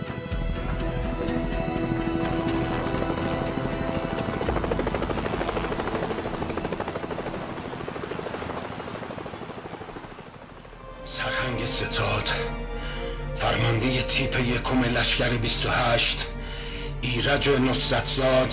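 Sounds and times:
helicopter rotor thump and engine whine: 0.0 - 13.1
speech: 11.6 - 12.6, 13.4 - 16.3, 17.0 - 18.5.

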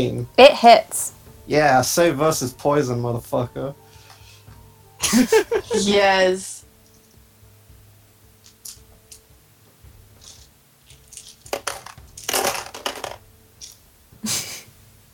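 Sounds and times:
speech: 0.0 - 3.8, 5.0 - 6.6
laughter: 5.0 - 6.0
handful of dice clattering across a hard surface: 10.2 - 13.8.

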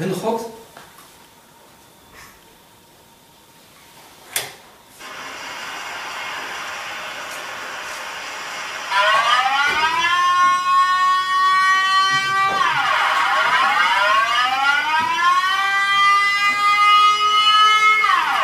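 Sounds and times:
speech: 0.0 - 0.6
civil defense warning siren wailing: 5.0 - 18.4.

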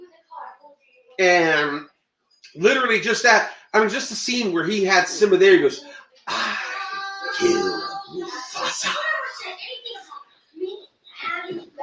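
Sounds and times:
speech: 1.2 - 6.6, 8.6 - 10.2
people arguing in another room: 2.6 - 11.8.

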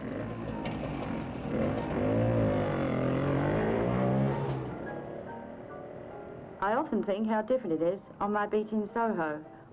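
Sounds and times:
motorbike engine revving: 0.0 - 5.2
speech: 6.6 - 9.6.

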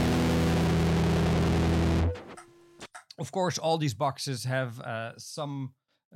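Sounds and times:
electric guitar chord through a distortion effect pedal: 0.0 - 2.2
speech: 3.2 - 6.1.

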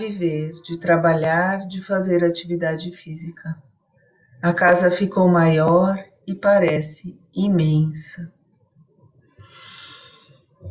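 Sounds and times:
speech: 0.0 - 3.7, 4.4 - 8.4
long airy breath: 9.4 - 10.5.

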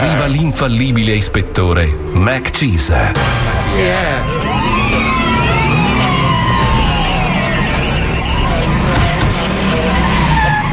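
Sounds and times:
speech: 0.0 - 4.5
flying Hummer tires screeching while skidding to a stop: 3.2 - 10.7.

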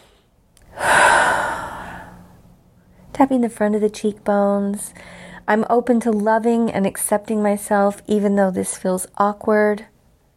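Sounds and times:
big deep breath: 0.0 - 3.0, 5.0 - 5.4
speech: 3.2 - 9.9.

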